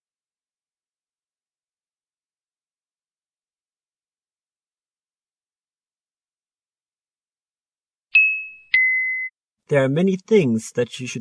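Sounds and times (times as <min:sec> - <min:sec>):
doorbell ding-dong chime: 0:08.2 - 0:09.3
speech: 0:09.7 - 0:11.2.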